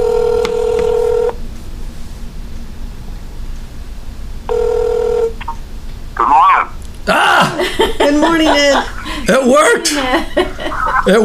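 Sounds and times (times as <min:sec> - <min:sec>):
telephone ringback tone over a line on speakerphone: 0:00.0 - 0:01.4, 0:04.5 - 0:05.3
laughter: 0:07.1 - 0:11.2
speech: 0:08.3 - 0:11.2.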